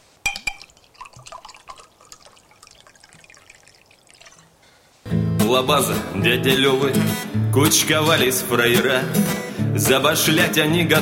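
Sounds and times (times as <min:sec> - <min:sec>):
glass clinking: 0:00.2 - 0:04.6
liquid poured into a glass, splashing and trickling: 0:00.3 - 0:04.6
speech: 0:05.5 - 0:11.0.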